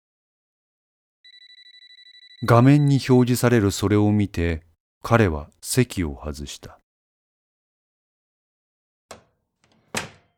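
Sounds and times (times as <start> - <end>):
mobile phone ringing with a trilling electronic tone: 1.3 - 3.1
speech: 2.4 - 6.8.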